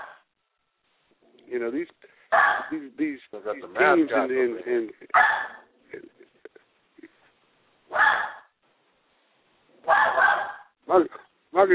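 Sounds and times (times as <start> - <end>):
dog barking at its own reflection: 0.0 - 0.3, 2.3 - 2.8, 5.1 - 5.7, 7.9 - 8.6, 9.8 - 10.8
faint small sounds: 0.0 - 3.4, 4.3 - 11.5
speech: 1.5 - 6.1, 10.9 - 11.7.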